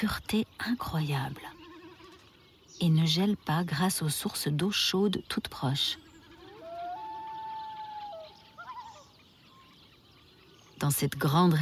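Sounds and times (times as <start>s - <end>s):
speech: 0.0s - 1.6s, 2.8s - 6.1s, 10.8s - 11.6s
common loon wailing call on Lake Mývatn in Iceland: 6.2s - 9.8s.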